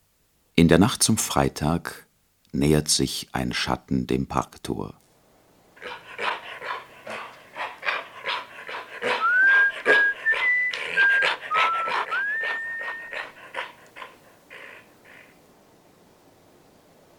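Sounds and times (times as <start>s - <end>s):
speech: 0.6s - 5.0s
guard dog huffing: 5.8s - 15.2s.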